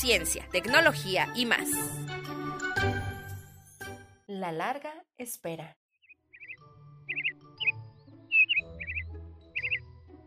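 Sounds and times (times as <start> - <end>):
speech: 0.0 - 2.2, 4.4 - 5.8
birds chirping in trees with short trills and whistled notes: 6.0 - 10.2.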